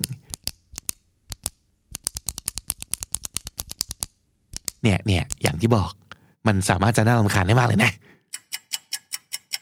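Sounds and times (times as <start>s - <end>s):
ballpoint pen clicking: 0.0s - 5.4s
speech: 4.8s - 8.1s.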